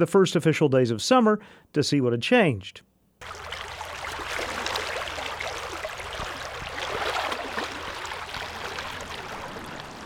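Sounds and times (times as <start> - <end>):
speech: 0.0 - 3.6
Clear Creek water babbling in Fayetteville under a Highway 112 bridge: 3.2 - 10.0.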